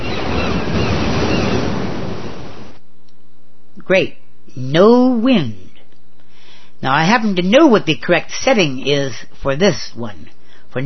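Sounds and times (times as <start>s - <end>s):
ocean surf rushing: 0.0s - 2.8s
speech: 3.9s - 5.6s, 6.8s - 10.8s.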